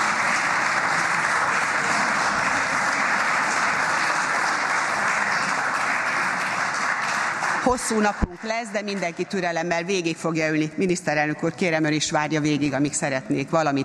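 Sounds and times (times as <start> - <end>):
large crowd applauding in a parliamentary chamber: 0.0 - 9.2
speech: 7.7 - 13.8.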